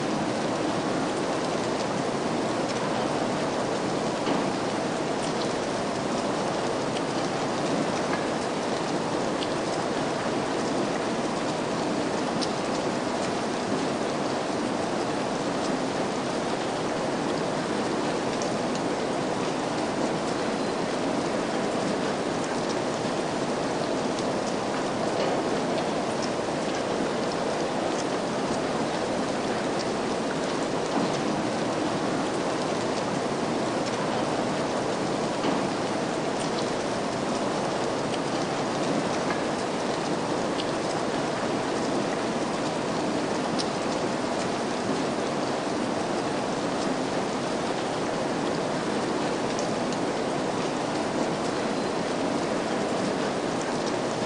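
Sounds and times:
rain: 0.0s - 54.2s.

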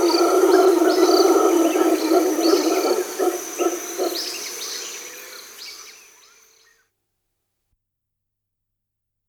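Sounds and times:
mantled howler monkey Alouatta palliata giving a deep growling roar: 0.0s - 4.3s.

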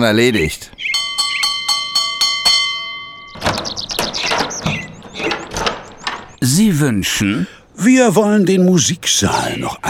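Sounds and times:
speech: 0.0s - 0.9s, 6.4s - 9.8s
high squeaky chirping: 0.8s - 6.4s
house doorbell ringing: 1.0s - 4.3s.

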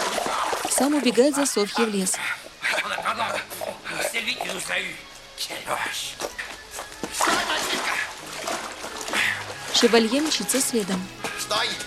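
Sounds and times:
churning river water: 0.0s - 11.7s
speech: 0.8s - 3.5s, 4.2s - 6.4s, 9.8s - 11.8s
heavy splash of a person thrown from a carriage into a river: 7.1s - 9.8s.

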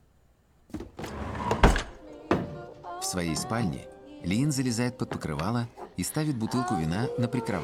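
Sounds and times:
woman pushing shut a kitchen sideboard drawer: 0.7s - 2.8s
speech: 3.1s - 7.6s.

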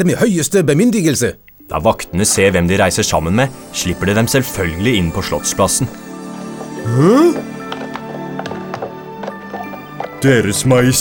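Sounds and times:
speech: 0.0s - 6.1s, 6.8s - 7.6s, 10.2s - 10.9s
sustained tonal background: 1.0s - 10.9s
slow clip-clop of horse hooves: 5.8s - 10.9s.

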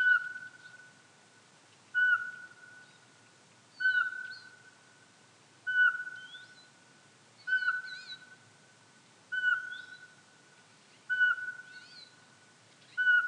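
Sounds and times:
faint bird chirps: 0.0s - 1.0s, 1.9s - 3.1s, 3.7s - 4.8s, 5.6s - 6.8s, 7.4s - 8.4s, 9.3s - 13.2s
Eurasian pygmy owl Glaucidium passerinum whistling: 2.0s - 3.0s, 3.8s - 4.6s, 5.7s - 6.6s, 7.4s - 8.2s, 9.3s - 10.1s, 11.1s - 12.1s, 12.9s - 13.2s.

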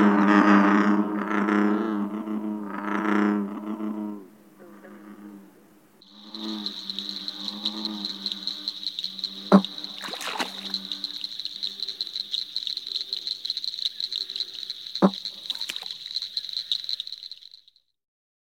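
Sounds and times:
American bullfrog giving deep resonant droning calls: 0.0s - 17.8s
steady high insect buzz: 6.0s - 17.8s.

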